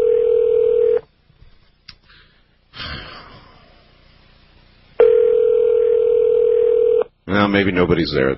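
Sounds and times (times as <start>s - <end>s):
steady loud telephone dial tone: 0.0s - 1.0s, 5.0s - 7.1s
speech: 7.5s - 8.3s.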